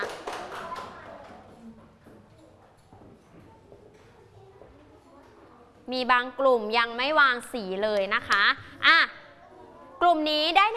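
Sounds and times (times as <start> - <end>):
group of children clapping: 0.0 - 1.5
speech: 5.9 - 9.1, 10.1 - 10.7.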